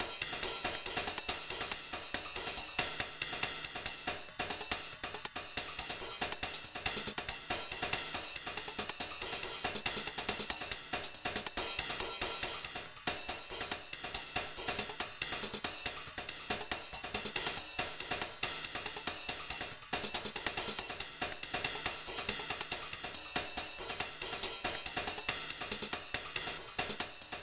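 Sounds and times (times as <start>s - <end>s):
cymbals and hi-hats percussion combos: 0.0s - 27.4s.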